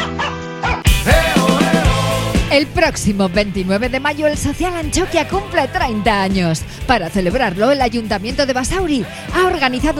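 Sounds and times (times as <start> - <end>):
dog barking and yipping: 0.0 - 0.9
steady musical backing: 0.0 - 9.9
speech: 2.6 - 9.9.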